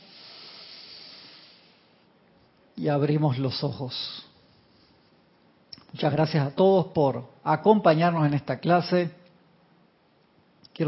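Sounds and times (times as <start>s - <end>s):
long deep breath drawn in: 0.0s - 2.0s
speech: 2.8s - 4.3s, 6.0s - 9.2s.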